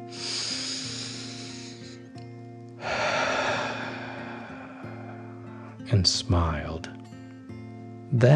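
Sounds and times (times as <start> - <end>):
deep breath in and out: 0.0 - 2.1, 2.8 - 5.9
soft sustained musical tones: 0.0 - 8.2
speech: 5.9 - 7.0, 8.1 - 8.3.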